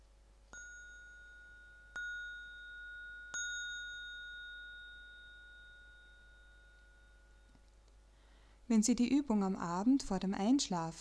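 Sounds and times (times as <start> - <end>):
small singing bowl chimes at the end of a meditation exercise: 0.5 - 7.8
speech: 8.7 - 11.0.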